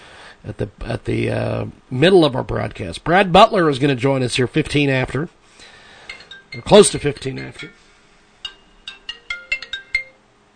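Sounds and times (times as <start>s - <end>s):
speech: 0.4s - 5.4s, 6.5s - 7.8s
cell phone alarm with melodic run of chiming tones: 6.0s - 10.2s.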